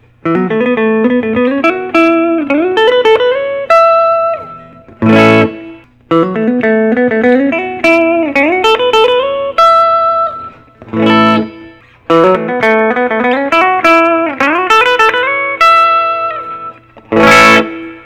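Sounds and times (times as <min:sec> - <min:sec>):
Gibson Historic 60 SG Reissue electric guitar: 0:00.0 - 0:18.0.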